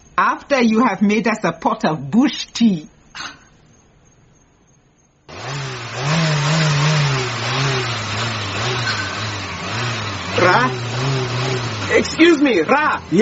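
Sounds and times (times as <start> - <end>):
speech: 0.2 - 3.4, 12.2 - 13.2
car engine starting and running: 5.3 - 13.2.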